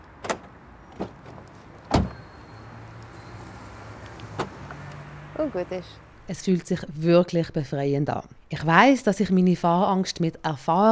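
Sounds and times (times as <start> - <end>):
car being locked after parking: 1.9 - 2.2
speech: 5.4 - 10.9.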